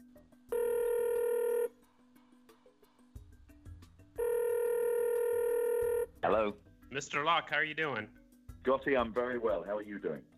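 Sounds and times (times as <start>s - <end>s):
ringback tone of an outgoing phone call: 0.5s - 1.7s, 4.2s - 6.1s
speech: 6.2s - 10.3s.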